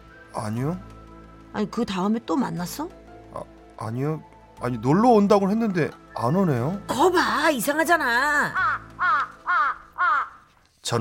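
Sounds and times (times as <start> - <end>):
speech: 0.4 - 0.9, 1.5 - 8.6
crow cawing: 8.2 - 10.6.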